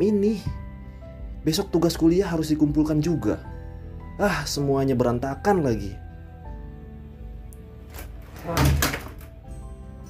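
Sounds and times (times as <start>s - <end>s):
speech: 1.4s - 3.6s, 4.2s - 6.0s
door forcefully slammed shut at a boarding house on a drizzly night: 7.9s - 9.4s.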